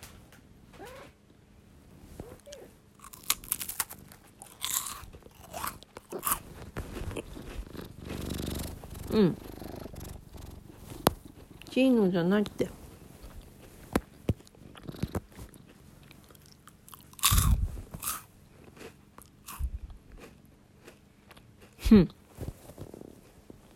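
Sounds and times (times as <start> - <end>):
moist chewing: 2.2 - 11.8, 12.5 - 21.8
crunching bites into a chocolate pie: 3.0 - 11.4, 13.3 - 21.7
speech: 9.1 - 9.5, 11.8 - 12.8, 21.9 - 22.2.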